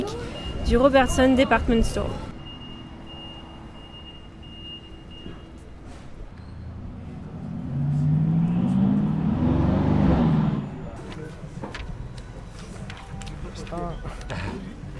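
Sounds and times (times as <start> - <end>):
speech: 0.1 - 2.3
cars, motorbikes and tuk-tuks pulling away at a green traffic light: 2.4 - 11.0
engine revving with rising whine: 6.6 - 10.8.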